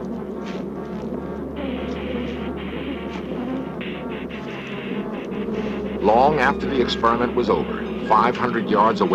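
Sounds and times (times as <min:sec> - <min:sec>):
swarm of attacking killer bees buzzing: 0:00.0 - 0:09.1
speech: 0:06.1 - 0:09.1.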